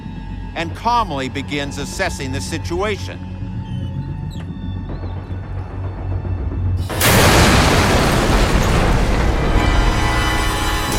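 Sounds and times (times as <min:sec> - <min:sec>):
low rumbling hum: 0:00.0 - 0:10.9
speech: 0:00.6 - 0:03.3
crackling wash of noise and debris: 0:06.8 - 0:10.9
car bomb blast: 0:06.9 - 0:09.8.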